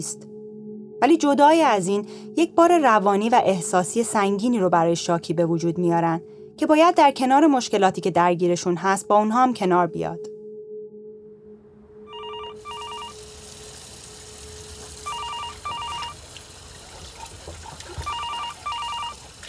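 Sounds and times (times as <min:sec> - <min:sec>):
speech: 0:00.0 - 0:00.3, 0:01.0 - 0:10.3
telephone ringing in electronic trills: 0:12.1 - 0:13.2, 0:15.0 - 0:16.2, 0:18.0 - 0:19.2.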